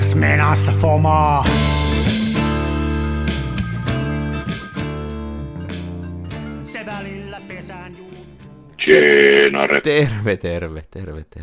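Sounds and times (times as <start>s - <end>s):
speech: 0.2s - 2.2s, 8.8s - 11.4s
phone and laptop ringtones for incoming call: 2.3s - 6.6s.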